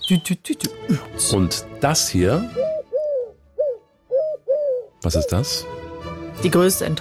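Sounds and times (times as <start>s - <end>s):
speech: 0.1s - 2.6s, 5.0s - 5.8s, 6.4s - 6.9s
Eurasian collared dove cooing: 2.5s - 5.5s.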